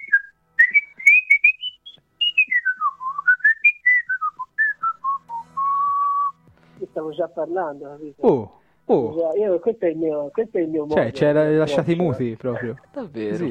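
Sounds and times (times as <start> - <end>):
person whistling a melodic tune: 0.0 - 6.4
speech: 7.0 - 13.4.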